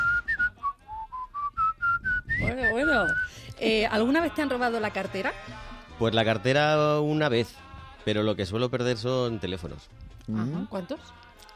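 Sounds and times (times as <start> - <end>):
whistling of a TV series theme tune: 0.0 - 3.5
speech: 2.4 - 11.2.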